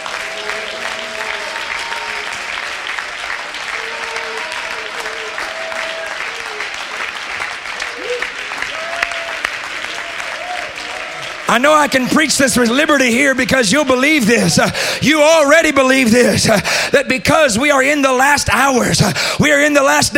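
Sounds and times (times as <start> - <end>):
large crowd clapping loudly: 0.0 - 15.3
speech: 11.5 - 20.1.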